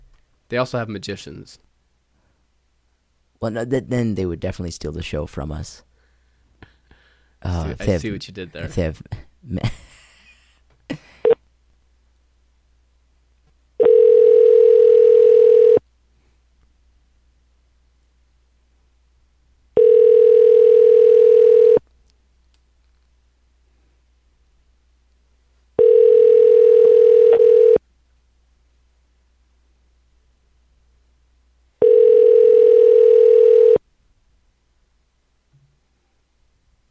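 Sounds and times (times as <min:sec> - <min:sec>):
speech: 0:00.5 - 0:01.7, 0:03.4 - 0:05.9, 0:07.4 - 0:09.9
phone line's ringback tone: 0:13.8 - 0:15.8, 0:19.8 - 0:21.8, 0:25.8 - 0:27.8, 0:31.8 - 0:33.8.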